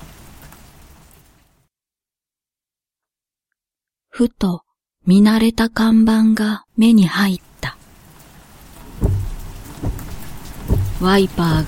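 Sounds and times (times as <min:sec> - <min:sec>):
heavy rain: 0:00.0 - 0:01.6, 0:06.8 - 0:11.6
speech: 0:04.2 - 0:07.8, 0:11.0 - 0:11.6.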